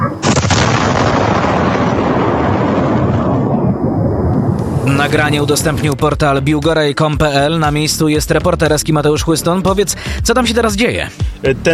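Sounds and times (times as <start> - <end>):
sustained roaring rumble: 0.0 - 6.5
massive missile impact explosion outdoors: 0.2 - 6.2
speech: 5.0 - 11.7.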